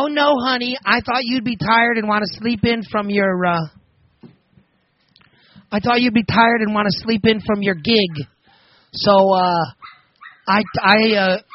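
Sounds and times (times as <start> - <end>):
speech: 0.0 - 3.8, 5.7 - 8.3, 8.9 - 9.8, 10.4 - 11.5
dogs whining and yelping: 8.0 - 8.4, 9.8 - 11.5.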